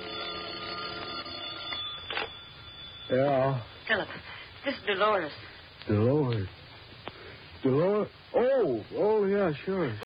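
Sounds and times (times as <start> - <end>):
telephone bell ringing: 0.0 - 5.0
speech: 3.1 - 6.6, 7.6 - 10.0.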